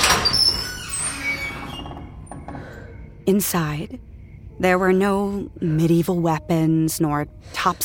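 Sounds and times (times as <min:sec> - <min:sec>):
door creaking open with squealing hinges: 0:00.0 - 0:03.0
speech: 0:03.3 - 0:07.8.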